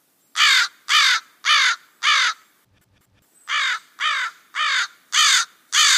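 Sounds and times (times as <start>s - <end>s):
American crow cawing: 0.4s - 2.4s, 3.5s - 5.9s.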